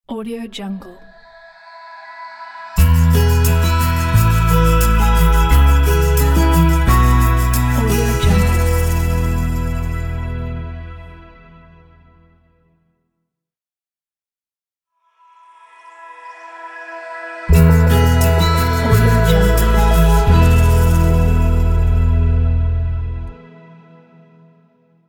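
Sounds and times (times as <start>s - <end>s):
fingerpicked acoustic logo jingle: 2.8s - 10.7s, 17.5s - 22.6s.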